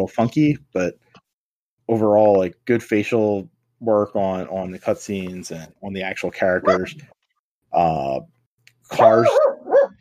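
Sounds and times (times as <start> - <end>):
speech: 0.0 - 1.0, 1.9 - 9.5
puppy barking with yaps and whine-like barks: 9.0 - 10.0.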